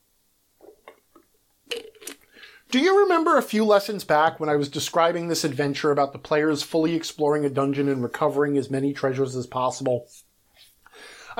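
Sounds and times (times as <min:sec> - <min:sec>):
person sipping a bottled drink: 0:00.6 - 0:02.6
speech: 0:02.7 - 0:10.3.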